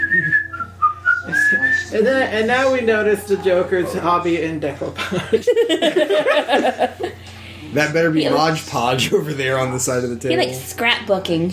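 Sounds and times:
person whistling a short melody: 0.0 - 2.0
low hum: 0.0 - 11.5
speech: 1.9 - 11.5
laughter: 3.5 - 7.6.

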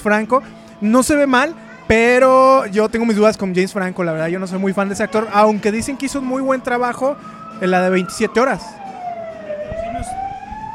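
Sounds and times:
speech: 0.0 - 8.8
ambulance siren wailing as it passes: 4.3 - 10.7.

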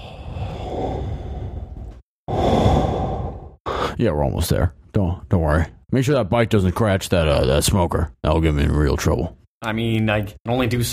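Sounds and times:
heavy breathing: 0.0 - 4.0
speech: 4.0 - 10.9.

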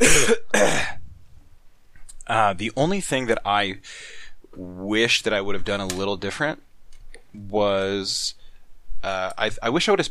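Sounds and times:
throat-clearing coughs from a person with something caught in their throat: 0.0 - 1.0
speech: 2.4 - 6.7, 7.3 - 8.4, 9.0 - 10.0.

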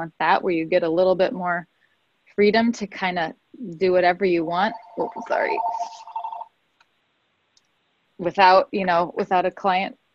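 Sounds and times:
speech: 0.0 - 1.7, 2.4 - 6.1, 8.2 - 10.0
phone ringing with a bright trilling electronic tone: 4.6 - 6.5.

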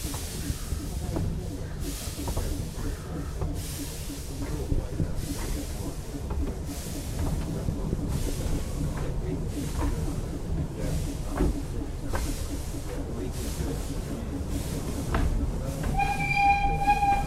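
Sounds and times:
railway coaches rattling and clattering along the track: 0.0 - 17.2
steam locomotive hissing: 0.0 - 17.2
brief whistle-like tone: 16.0 - 17.2.

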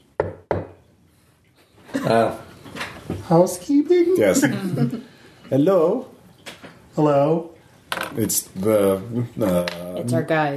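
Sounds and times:
polite knocks on a door: 0.2 - 0.8
speech: 2.0 - 2.4, 3.3 - 6.1, 7.0 - 7.5, 8.1 - 10.5.

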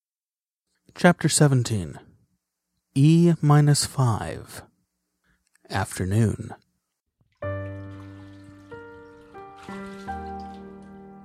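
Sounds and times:
speech: 0.9 - 2.1, 3.0 - 4.7, 5.7 - 6.6
water dripping and pinging in bathtub: 7.2 - 11.2.

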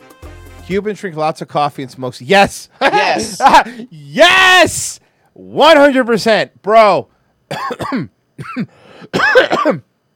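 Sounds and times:
speech: 0.7 - 9.9
laughter: 2.8 - 3.9
throaty clearing: 7.5 - 9.9
harsh raspy hacking coughing: 7.5 - 10.0.

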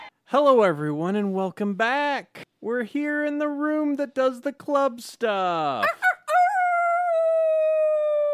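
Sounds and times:
speech: 0.3 - 6.1
person imitating a wolf howl: 5.9 - 8.2.

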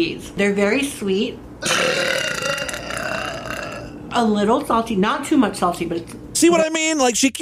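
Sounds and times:
speech: 0.0 - 2.0, 4.2 - 7.3
woman burping during a food review: 1.6 - 4.0.

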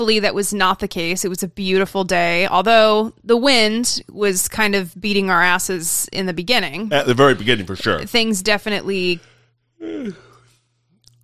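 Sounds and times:
speech: 0.0 - 10.3
person yawning: 9.8 - 10.5.

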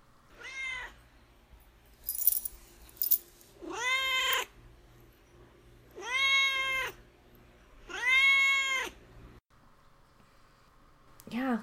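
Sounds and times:
neutered male cat meowing insistently: 0.4 - 1.0, 3.6 - 4.5, 6.0 - 7.0, 7.9 - 9.0
brief clinking rattles: 2.0 - 3.3.

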